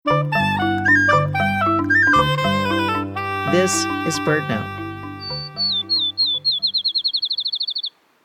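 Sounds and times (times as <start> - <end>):
musical tone: 0.1 - 6.6
field sparrow song: 0.6 - 8.0
speech: 3.5 - 4.8.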